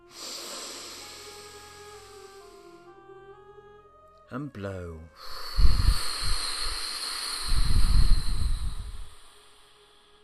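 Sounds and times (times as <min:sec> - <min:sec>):
deep breath in during meditation: 0:00.0 - 0:02.9, 0:05.2 - 0:10.2
speech: 0:04.3 - 0:05.7.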